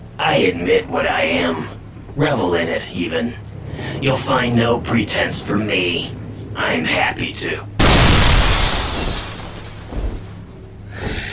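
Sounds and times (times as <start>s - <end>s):
speech: 0.3s - 7.7s
stone, glass and wood breaking: 7.8s - 10.4s
rumbling debris: 7.8s - 10.8s.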